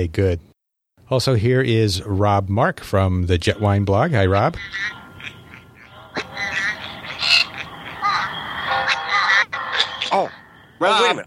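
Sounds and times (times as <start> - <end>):
speech: 0.0 - 0.5, 1.1 - 5.4, 10.1 - 11.2
cartoonish bird squawks, chirps and squeaky calls from a mobile game: 4.2 - 10.5.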